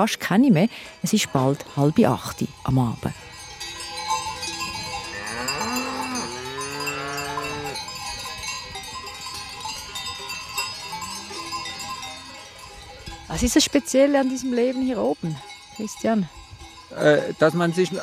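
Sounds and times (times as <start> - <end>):
speech: 0.0 - 3.3, 13.4 - 16.4, 17.0 - 18.0
cowbells clanking on a moving cattle herd: 0.5 - 18.0
cow mooing: 5.0 - 7.9.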